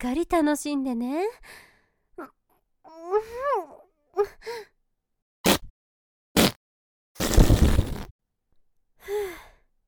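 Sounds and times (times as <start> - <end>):
speech: 0.0 - 4.7, 9.0 - 9.5
person moaning and sighing: 2.9 - 4.4
short sharp fart bursts: 5.5 - 5.7, 6.4 - 6.6, 7.2 - 8.1
loud long rough fart: 6.4 - 6.6, 7.2 - 8.1.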